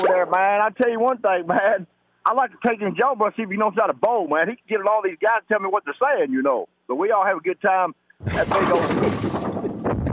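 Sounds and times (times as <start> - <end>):
speech: 0.0 - 10.0
explosion sound effect: 8.2 - 10.1.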